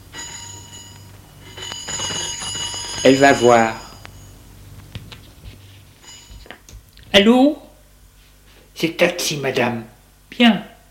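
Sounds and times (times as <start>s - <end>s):
electronic intercom buzzer ringing: 0.0s - 4.5s
speech: 3.0s - 3.8s, 7.1s - 7.6s, 8.8s - 10.7s.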